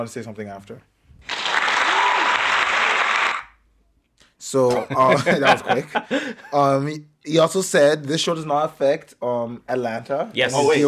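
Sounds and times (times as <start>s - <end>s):
speech: 0.0s - 1.0s, 4.4s - 10.8s
group applauding with dense clapping: 1.2s - 3.6s
laughter: 4.9s - 6.5s.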